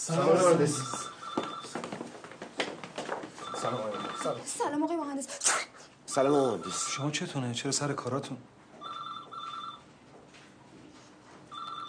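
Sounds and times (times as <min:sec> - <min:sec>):
speech: 0:00.0 - 0:01.5, 0:03.6 - 0:08.6
telephone ringing with electronic trilling: 0:00.2 - 0:02.2, 0:03.4 - 0:04.7, 0:06.1 - 0:07.2, 0:08.8 - 0:09.9, 0:11.5 - 0:11.8.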